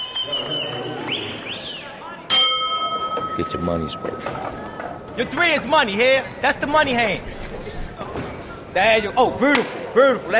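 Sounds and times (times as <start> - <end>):
murmuring crowd: 0.0 - 10.3
boxing ring bell clanging to start a round: 2.3 - 4.4
speech: 3.4 - 8.1, 8.7 - 10.3.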